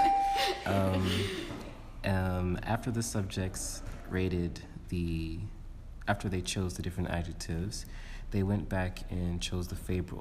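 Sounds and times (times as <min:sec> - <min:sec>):
doorbell chiming: 0:00.0 - 0:00.9
speech: 0:00.6 - 0:10.1.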